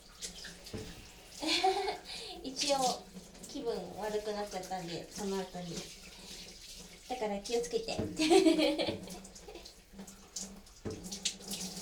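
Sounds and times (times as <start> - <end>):
water sloshing and splashing as someone washes their body in a bath: 0.0 - 11.7
speech: 2.5 - 6.0, 7.1 - 9.2.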